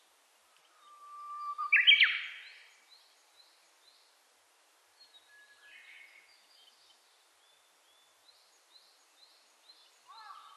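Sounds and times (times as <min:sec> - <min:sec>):
Japanese bush warbler song: 0:00.8 - 0:02.6.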